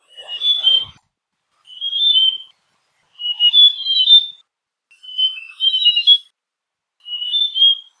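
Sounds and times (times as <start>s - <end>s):
White-tailed Robin calling in Cameron Highlands Malaysia: 0.0s - 6.4s, 7.0s - 7.9s.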